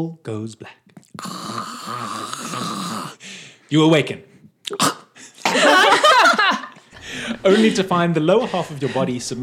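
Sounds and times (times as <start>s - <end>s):
speech: 0.0s - 2.8s, 3.7s - 5.0s, 7.4s - 9.4s
person loudly imitating snoring: 1.2s - 3.2s
laughter: 5.4s - 9.2s.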